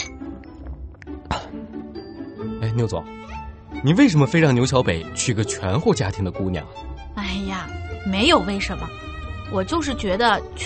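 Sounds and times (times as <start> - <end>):
glasses clinking together in a toast: 0.0 - 0.6
speech: 2.8 - 10.6.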